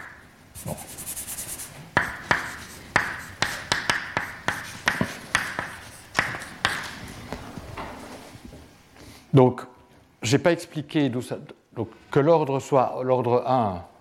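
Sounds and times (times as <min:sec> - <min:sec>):
writing taps and scratchy strokes during a mathematics lecture: 0:00.0 - 0:07.4
speech: 0:09.4 - 0:13.9.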